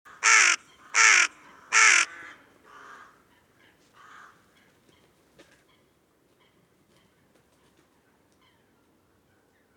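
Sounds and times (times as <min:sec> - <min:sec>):
carrion crow Corvus corone cawing: 0:00.1 - 0:03.2, 0:04.0 - 0:04.4.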